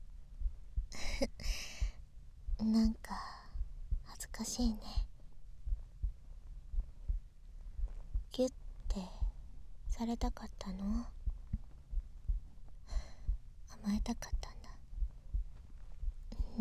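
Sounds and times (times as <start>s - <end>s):
close heartbeat: 0.0s - 16.5s
soft hum: 0.0s - 16.5s
speech: 2.6s - 3.4s, 4.4s - 5.1s, 8.4s - 9.2s, 10.0s - 11.2s, 13.8s - 14.6s
person whispering quietly: 2.6s - 5.1s, 8.4s - 9.3s, 9.9s - 11.2s, 13.7s - 14.8s.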